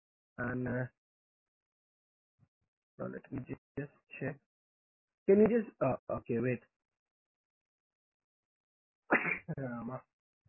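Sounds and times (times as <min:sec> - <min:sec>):
speech: 0:00.4 - 0:01.0, 0:03.0 - 0:04.5, 0:05.3 - 0:06.7, 0:09.2 - 0:10.1
sneeze: 0:09.1 - 0:09.5.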